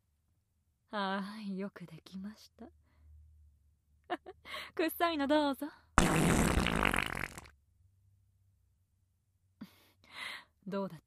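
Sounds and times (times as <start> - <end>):
speech: 0.9 - 2.8, 4.2 - 6.4, 10.2 - 11.0
loud sputtering fart: 6.0 - 7.5.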